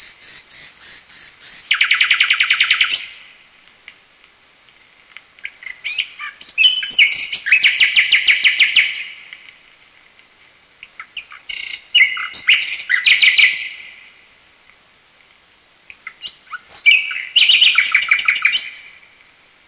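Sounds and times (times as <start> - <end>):
nightingale song: 0.0 - 3.3, 5.4 - 9.3, 10.8 - 14.1, 15.9 - 19.0.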